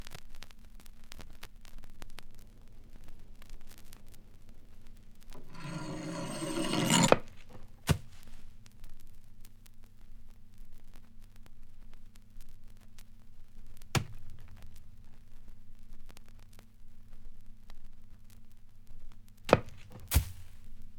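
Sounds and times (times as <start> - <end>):
guillotine: 5.4 - 7.6.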